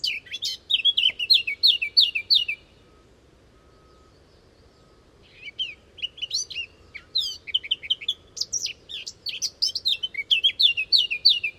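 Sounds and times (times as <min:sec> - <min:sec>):
Eurasian blackcap Sylvia atricapilla singing rapid scratchy warbled phrases: 0:00.0 - 0:02.6, 0:05.3 - 0:11.5.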